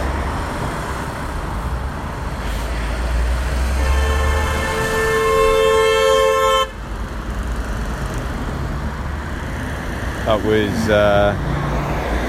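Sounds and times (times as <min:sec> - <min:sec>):
road traffic rumble at a roundabout: 0:00.0 - 0:12.2
car horn blaring at a car undertaking a truck: 0:03.7 - 0:06.9
speech: 0:10.5 - 0:11.5.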